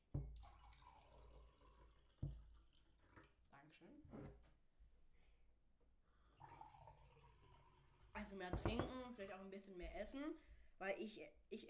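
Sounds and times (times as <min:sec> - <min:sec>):
drink pouring into a glass: 0:00.2 - 0:03.4, 0:06.2 - 0:08.0
speech: 0:03.8 - 0:04.4, 0:08.2 - 0:11.6
dull knock: 0:08.5 - 0:09.0.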